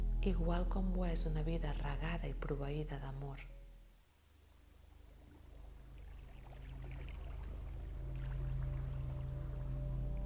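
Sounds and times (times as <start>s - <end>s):
deep constant low hum: 0.0s - 10.2s
speech: 0.2s - 3.6s
water flowing: 4.4s - 10.2s.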